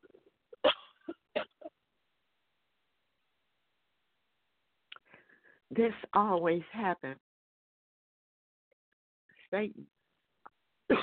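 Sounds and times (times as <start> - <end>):
harsh coughs: 0.6 - 1.8
speech: 5.7 - 7.2, 9.5 - 10.0.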